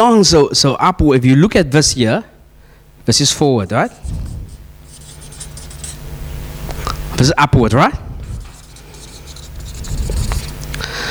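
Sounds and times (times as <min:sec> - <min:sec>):
speech: 0:00.1 - 0:02.3, 0:03.1 - 0:04.3, 0:07.2 - 0:08.0
pen scratching and rubbing as it draws: 0:04.0 - 0:06.1, 0:08.2 - 0:10.7.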